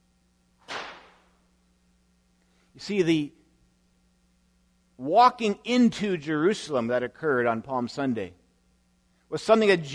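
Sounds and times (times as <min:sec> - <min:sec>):
faint low hum: 0:00.0 - 0:09.9
whip crack: 0:00.6 - 0:01.3
speech: 0:02.8 - 0:03.4, 0:05.0 - 0:08.4, 0:09.3 - 0:09.9.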